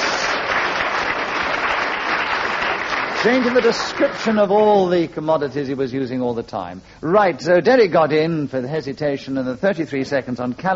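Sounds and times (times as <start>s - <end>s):
audience applause with many hands clapping: 0.0s - 4.7s
speech: 3.2s - 10.7s.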